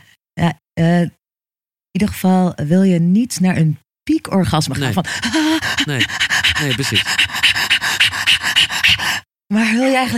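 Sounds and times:
speech: 0:00.4 - 0:01.2, 0:02.0 - 0:07.2, 0:09.5 - 0:10.1
dog panting rapidly: 0:04.9 - 0:09.2.

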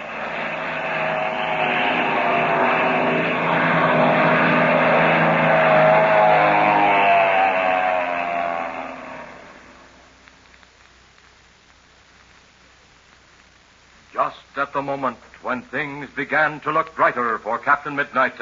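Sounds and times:
airplane engine roaring as it dives: 0:00.0 - 0:10.1
speech: 0:14.9 - 0:18.4.

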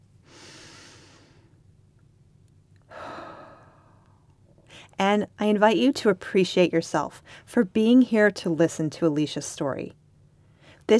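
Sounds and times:
steady low hum: 0:00.0 - 0:10.9
slow deep breath: 0:00.2 - 0:01.6, 0:02.9 - 0:04.9
speech: 0:05.0 - 0:10.0.

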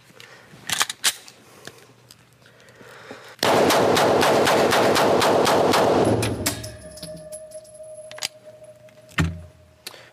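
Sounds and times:
rapid gunfire from a gun fired for timing: 0:03.4 - 0:06.5.

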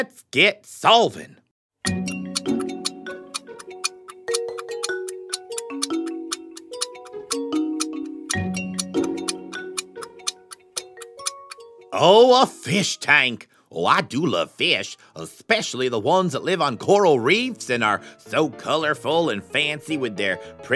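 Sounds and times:
speech: 0:00.0 - 0:02.0, 0:12.0 - 0:20.7
light repeating musical tone pattern: 0:01.8 - 0:12.9
countdown clock ticking during a quiz round: 0:01.9 - 0:12.8.

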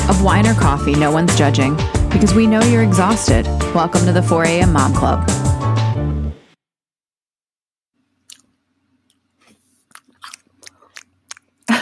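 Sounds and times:
speech: 0:00.2 - 0:05.4
wet crunching chews of a crunchy apple: 0:08.2 - 0:11.8
bite into a crisp apple: 0:09.5 - 0:11.6.

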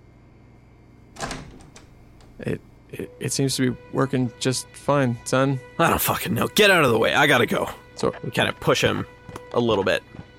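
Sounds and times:
door handle metallic rattle: 0:01.2 - 0:02.4
speech: 0:02.4 - 0:10.2.

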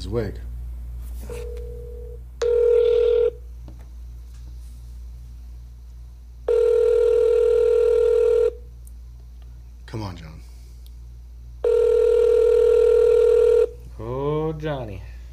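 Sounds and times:
speech: 0:00.0 - 0:00.5, 0:09.9 - 0:10.5, 0:14.6 - 0:15.1
telephone call tones as a number is rung up: 0:01.3 - 0:03.4, 0:06.5 - 0:08.6, 0:11.6 - 0:13.8.

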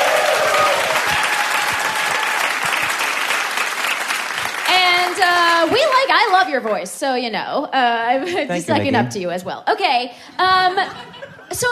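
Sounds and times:
crowd applauding: 0:00.0 - 0:06.7
speech: 0:06.5 - 0:11.6.

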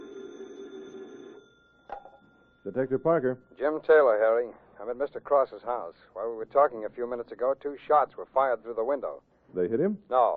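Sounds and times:
telephone ringing at a desk in a police headquarters: 0:00.0 - 0:04.6
speech: 0:02.6 - 0:10.3.

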